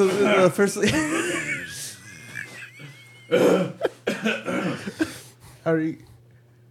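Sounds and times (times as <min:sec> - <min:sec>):
speech: 0:00.0 - 0:01.5, 0:03.3 - 0:04.6, 0:05.6 - 0:06.1
laughter: 0:00.8 - 0:05.2
person coughing: 0:02.0 - 0:05.2.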